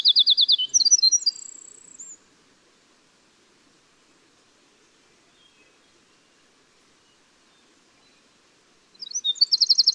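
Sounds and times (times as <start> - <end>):
winter wren song: 0.0 - 2.2, 7.0 - 9.9.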